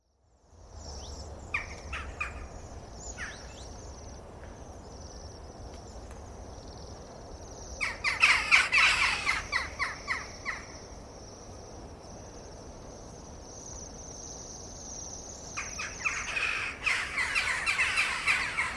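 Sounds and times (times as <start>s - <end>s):
flock of jackdaws: 7.8s - 10.8s, 15.6s - 18.7s.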